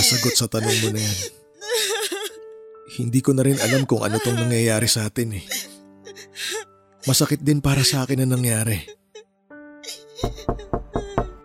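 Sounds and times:
speech: 0.1s - 1.4s, 2.9s - 5.7s, 6.4s - 9.0s
nurses knocking on a door: 10.2s - 11.4s.

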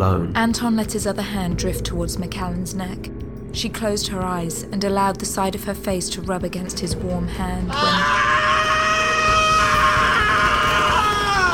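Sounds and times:
speech: 0.0s - 8.3s
man screaming as he bolts upright in a medical bay: 7.7s - 11.5s.

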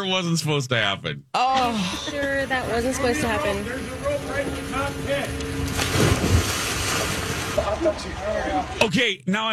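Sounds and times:
speech: 0.0s - 6.6s, 7.6s - 9.5s
people jumping into the Pacific Ocean to reach people in a minivan: 5.6s - 8.8s.

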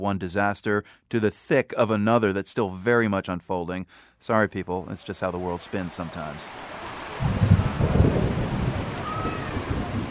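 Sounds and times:
speech: 0.0s - 7.4s
steady rain falling during severe flooding in southern Malawi: 4.6s - 10.1s
low rumbling thunder: 7.2s - 10.1s.

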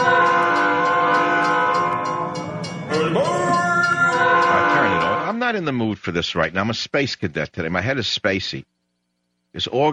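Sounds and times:
rumbling rail noise: 0.0s - 5.4s
train horn: 0.0s - 5.4s
speech: 5.5s - 8.7s, 9.5s - 9.9s.

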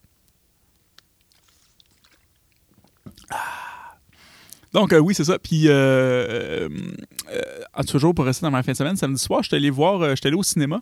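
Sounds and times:
person taking a small sip of water: 0.0s - 4.8s
person swallowing water with a gulp: 1.2s - 4.7s, 6.2s - 7.8s
speech: 4.7s - 7.1s, 7.8s - 10.8s.

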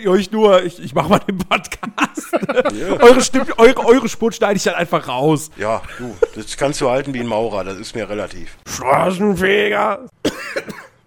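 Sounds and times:
speech: 0.0s - 10.8s
laughter: 1.1s - 4.2s, 5.8s - 6.6s
person coughing: 10.2s - 11.0s.

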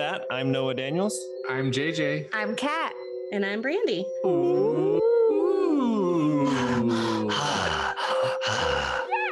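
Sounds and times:
speech: 0.1s - 5.2s
voice imitating deep heavy breathing: 4.2s - 9.2s.

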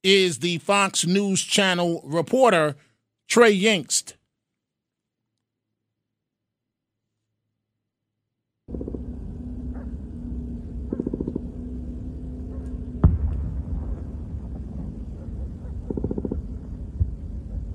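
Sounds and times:
speech: 0.0s - 4.2s
steady low rumble: 8.7s - 17.7s
rapid gunfire: 10.9s - 11.5s, 13.0s - 16.6s
heavy blast from an airstrike: 12.8s - 17.7s
smaller thump: 13.0s - 14.1s.

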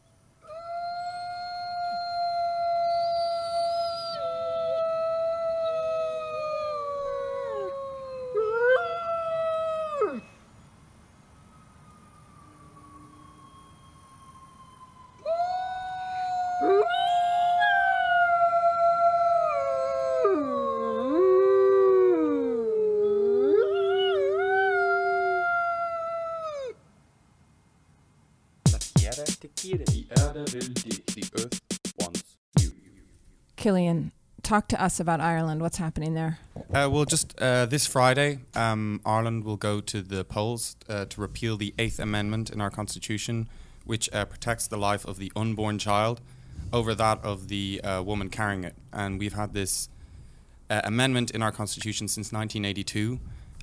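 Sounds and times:
gray wolves howling: 0.4s - 10.4s, 11.6s - 26.8s
speech: 29.2s - 31.6s, 33.6s - 49.9s, 50.7s - 53.3s.

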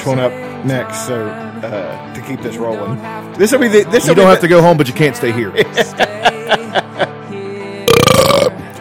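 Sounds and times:
speech: 0.0s - 7.0s
laughter: 5.4s - 7.3s
long loud gravelly belch: 7.9s - 8.6s
short burps: 7.9s - 8.6s.

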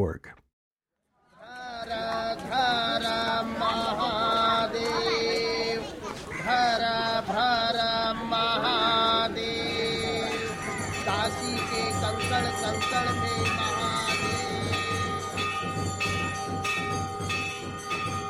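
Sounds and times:
speech: 0.0s - 0.4s
murmur of voices: 1.3s - 15.8s
prayer bells clanging in India: 1.8s - 5.8s, 6.8s - 18.2s.

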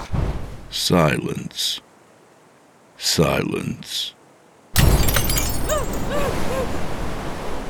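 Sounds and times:
speech: 0.7s - 1.9s, 3.0s - 4.2s
car window glass shattering inward during a crash: 4.8s - 6.0s
falling glass shards tinkling: 4.8s - 6.4s.

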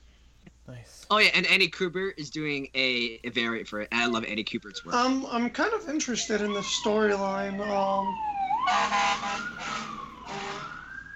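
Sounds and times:
speech: 0.7s - 10.5s
fire truck siren wailing outside: 4.0s - 11.1s.

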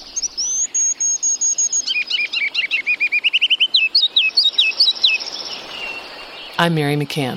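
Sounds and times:
Virginia rail calling from a marsh in spring: 0.0s - 6.8s
speech: 6.6s - 7.3s.

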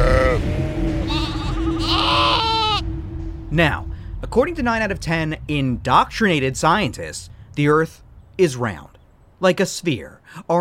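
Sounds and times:
low steady rumble: 0.0s - 10.3s
sheep bleating: 1.1s - 2.8s
speech: 3.5s - 10.5s.

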